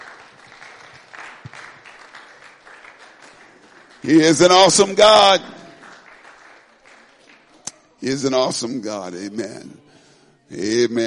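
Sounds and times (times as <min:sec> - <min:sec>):
crowd clapping hands: 0:00.0 - 0:08.2
speech: 0:04.0 - 0:05.6, 0:08.0 - 0:09.9, 0:10.5 - 0:11.0.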